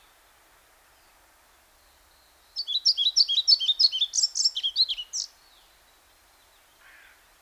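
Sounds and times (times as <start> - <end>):
European pied flycatcher Ficedula hypoleuca singing: 2.6 - 5.3.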